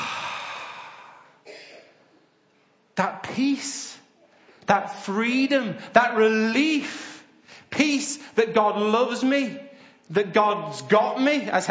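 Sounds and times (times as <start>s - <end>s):
group of people breathing together on cue: 0.0s - 1.8s, 7.0s - 7.7s, 9.7s - 10.1s
speech: 3.0s - 4.0s, 4.7s - 7.1s, 7.7s - 11.7s.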